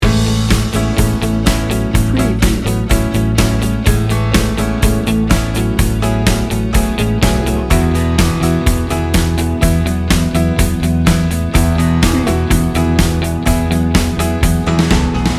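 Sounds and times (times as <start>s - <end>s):
warm upbeat soft rock loop: 0.0s - 15.3s.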